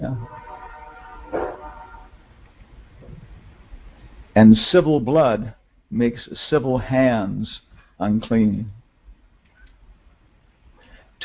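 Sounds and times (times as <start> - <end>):
train horn blowing on a railroad track: 0.0 - 2.2
low steady rumble: 0.0 - 11.2
speech: 4.4 - 8.8.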